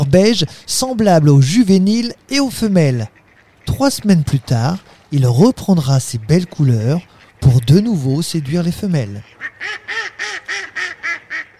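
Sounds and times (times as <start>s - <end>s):
speech: 0.1s - 10.9s
mallard harsh nasal quacks: 2.9s - 4.8s, 5.4s - 11.5s.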